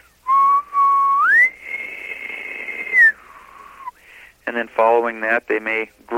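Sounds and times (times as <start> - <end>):
person whistling in imitation of an elk bugle: 0.3 - 4.0
speech: 4.6 - 6.1.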